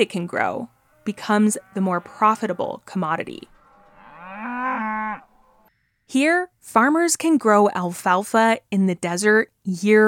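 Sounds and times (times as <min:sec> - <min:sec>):
speech: 0:00.0 - 0:03.5, 0:06.1 - 0:10.0
dairy cow mooing: 0:00.4 - 0:05.7.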